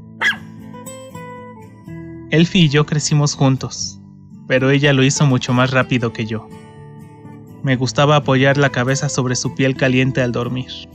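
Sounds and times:
steady low music: 0.0 - 10.9
small female dog barking: 0.2 - 0.5
speech: 2.3 - 6.6, 7.6 - 10.9.

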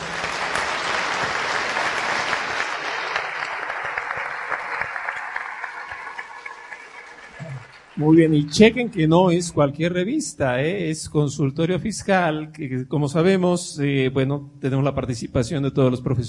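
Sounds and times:
classmates applauding: 0.0 - 9.3
speech: 8.0 - 16.2.

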